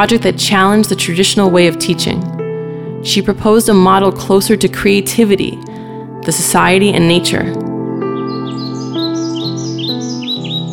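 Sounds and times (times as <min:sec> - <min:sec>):
speech: 0:00.0 - 0:02.4, 0:03.0 - 0:07.7
bird singing from the top of a tree: 0:07.8 - 0:10.7.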